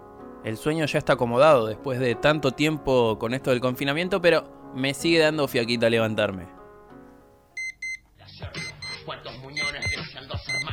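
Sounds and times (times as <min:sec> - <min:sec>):
speech: 0:00.4 - 0:06.6
clock radio alarm electronic beeps: 0:07.6 - 0:08.0, 0:08.6 - 0:09.0, 0:09.6 - 0:10.7.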